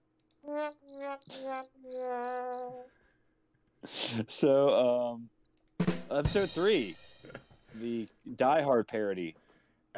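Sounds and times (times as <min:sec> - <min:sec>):
speech: 0:00.4 - 0:03.0, 0:03.8 - 0:09.4
cricket chirping: 0:00.5 - 0:02.8.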